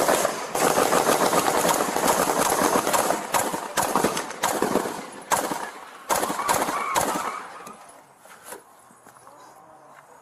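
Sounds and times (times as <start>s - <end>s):
AK-47 rifle gunfire in a shooting at a fair: 0.0s - 7.5s.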